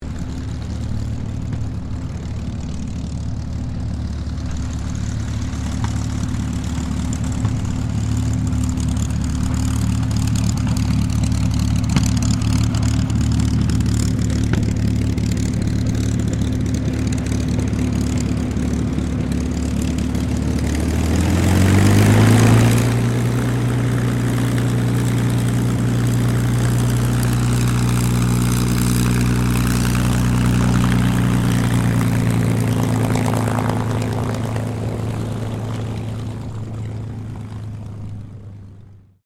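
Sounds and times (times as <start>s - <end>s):
CA-18 Mustang P51 aircraft taxiing: 0.0s - 39.2s.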